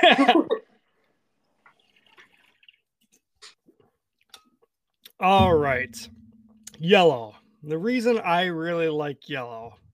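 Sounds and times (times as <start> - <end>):
speech: 5.2 - 6.2, 6.8 - 9.8
thump: 5.4 - 6.8.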